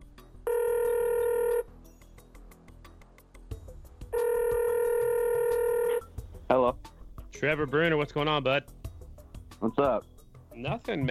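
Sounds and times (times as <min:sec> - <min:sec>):
telephone ringing with long loud electronic rings: 0:00.5 - 0:01.7, 0:04.2 - 0:06.1
speech: 0:06.5 - 0:08.8, 0:09.6 - 0:11.1.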